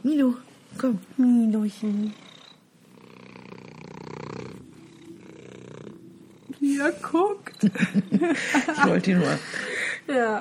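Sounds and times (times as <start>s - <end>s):
speech: 0.1s - 2.2s, 6.6s - 10.3s
cat purring: 1.4s - 8.2s
laughter: 7.6s - 9.8s.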